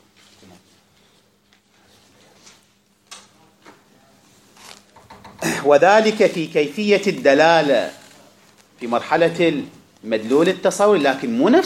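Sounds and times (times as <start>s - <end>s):
door opening indoors: 4.9s - 5.6s
speech: 5.6s - 8.0s, 8.8s - 11.6s.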